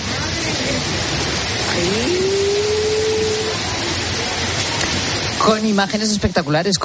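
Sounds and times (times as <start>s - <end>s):
heavy rain from a storm in Orense pouring down: 0.0s - 6.8s
brief sustained rising tone: 1.7s - 4.0s
speech: 5.5s - 6.8s.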